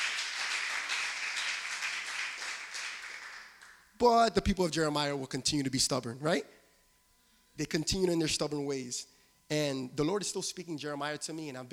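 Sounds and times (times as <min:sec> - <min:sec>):
audience applauding: 0:00.0 - 0:03.8
speech: 0:04.0 - 0:06.6, 0:07.6 - 0:11.7.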